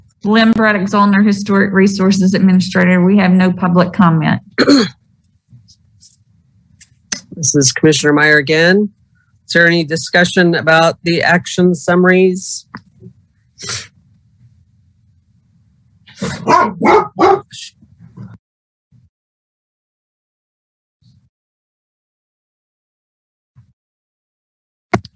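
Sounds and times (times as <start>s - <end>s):
faint scattered noises: 0.0s - 18.4s
speech: 0.2s - 5.0s, 7.4s - 12.7s, 13.6s - 13.9s, 16.2s - 17.4s
dog barking: 16.2s - 17.6s.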